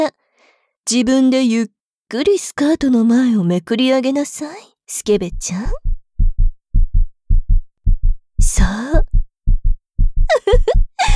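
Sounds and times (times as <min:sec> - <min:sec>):
speech: 0:00.8 - 0:06.0, 0:08.5 - 0:09.2, 0:10.3 - 0:11.1
loud heartbeat thumping in lub-dub pairs: 0:05.2 - 0:11.1.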